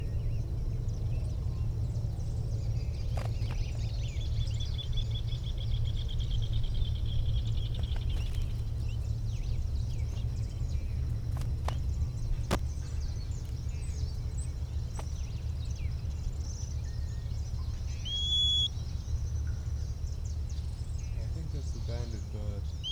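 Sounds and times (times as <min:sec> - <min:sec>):
steady low rumble of wind or noise: 0:00.0 - 0:22.9
bird giving thin short whistles: 0:17.9 - 0:18.7.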